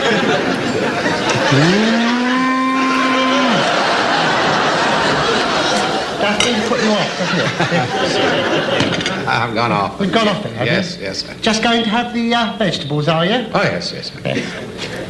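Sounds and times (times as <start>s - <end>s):
laughter: 0.0s - 11.4s, 14.2s - 15.0s
indistinct chatter: 0.0s - 12.4s
cow mooing: 1.4s - 3.9s
speech: 1.5s - 1.9s, 6.9s - 15.0s.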